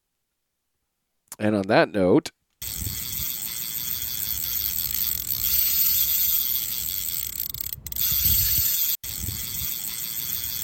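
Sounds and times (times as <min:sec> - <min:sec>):
speech: 0:01.4 - 0:02.4
fishing reel clicker ratcheting as a bait check: 0:02.6 - 0:10.6.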